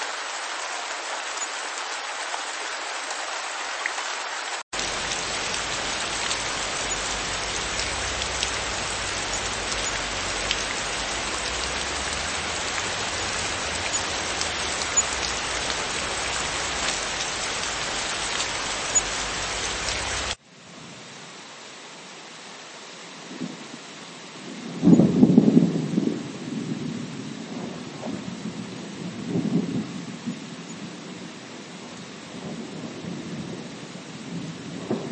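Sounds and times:
steady dense rain: 0:00.0 - 0:35.1
low rumble of thunder: 0:04.8 - 0:20.4, 0:24.4 - 0:35.1.

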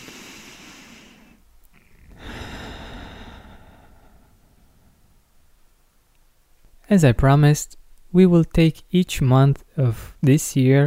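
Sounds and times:
slow deep breath in and out: 0:00.0 - 0:05.3
speech: 0:06.9 - 0:10.8.

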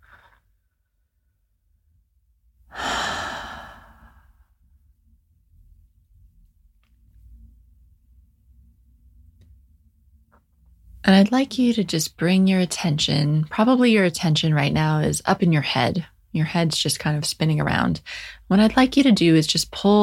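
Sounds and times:
faint breathing: 0:02.7 - 0:04.5, 0:18.0 - 0:18.5
slow deep breath during a guided relaxation exercise: 0:02.7 - 0:04.6
speech: 0:11.1 - 0:20.0.

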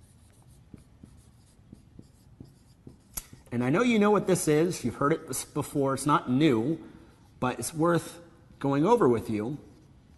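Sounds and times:
pen writing on paper: 0:00.0 - 0:03.4
speech: 0:03.5 - 0:09.7.

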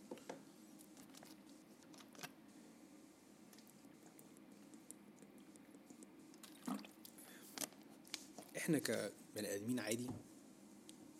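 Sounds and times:
person drinking water with wet sips and swallows: 0:06.0 - 0:07.2
speech: 0:08.7 - 0:10.3.

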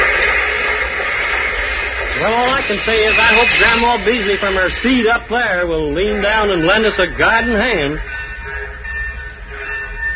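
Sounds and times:
train rolling into a station rumbling: 0:00.0 - 0:10.1
high sustained metallic squeals of a train: 0:02.2 - 0:10.1
speech: 0:02.3 - 0:08.1.

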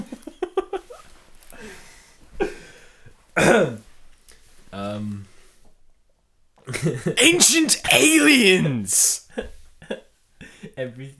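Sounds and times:
speech: 0:03.4 - 0:03.8, 0:07.1 - 0:09.5, 0:10.8 - 0:11.1
sharp loud cough: 0:07.2 - 0:09.2
short throaty vocal sounds: 0:07.2 - 0:09.2.

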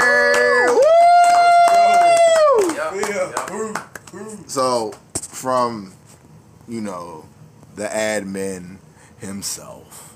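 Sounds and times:
person whooping: 0:00.0 - 0:02.8
scattered cheering: 0:00.0 - 0:03.2
small group clapping: 0:00.0 - 0:05.0
speech: 0:04.6 - 0:06.0, 0:06.7 - 0:10.1.

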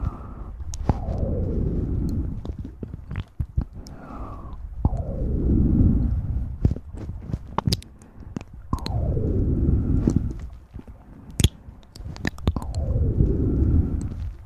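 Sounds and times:
low rumbling rush: 0:00.0 - 0:14.4
wet mouth sounds with clicks and smacks: 0:02.0 - 0:05.0, 0:06.0 - 0:09.0, 0:09.9 - 0:14.4.

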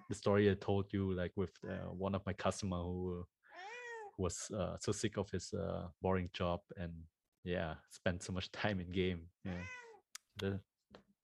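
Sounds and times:
speech: 0:00.1 - 0:09.8, 0:10.4 - 0:11.0
cat meowing: 0:03.6 - 0:04.1, 0:09.5 - 0:10.0.

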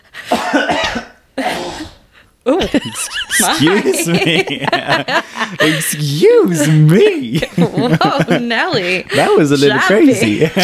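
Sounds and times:
coughing and throat clearing: 0:00.3 - 0:02.0
speech: 0:00.5 - 0:01.0, 0:02.5 - 0:10.6
laughter: 0:02.6 - 0:10.6.

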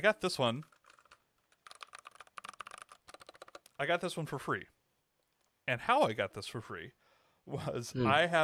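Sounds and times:
speech: 0:00.0 - 0:00.7, 0:03.8 - 0:04.7, 0:05.7 - 0:08.4
typing on a computer keyboard in an office: 0:00.6 - 0:03.8.

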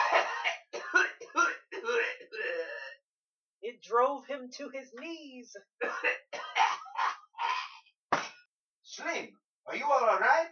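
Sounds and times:
harsh rasping coughing fit: 0:00.0 - 0:03.0, 0:05.8 - 0:08.4
speech: 0:04.0 - 0:06.2, 0:09.0 - 0:10.5.

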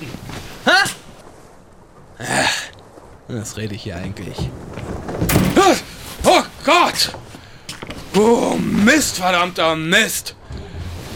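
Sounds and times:
speech: 0:03.3 - 0:05.9, 0:06.6 - 0:07.2, 0:08.2 - 0:10.4
door blown shut by the wind: 0:05.2 - 0:06.1.

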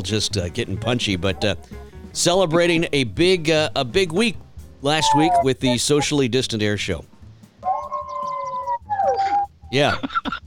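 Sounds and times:
speech: 0:00.0 - 0:07.1, 0:09.7 - 0:10.4
howling heard through an open window: 0:05.0 - 0:06.1, 0:07.6 - 0:09.7.

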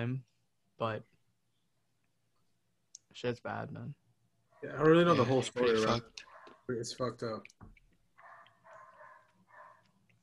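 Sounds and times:
speech: 0:00.0 - 0:01.1, 0:03.2 - 0:04.0, 0:04.6 - 0:07.6
stray dog barking in the Philippines: 0:06.2 - 0:06.7, 0:08.2 - 0:10.0.

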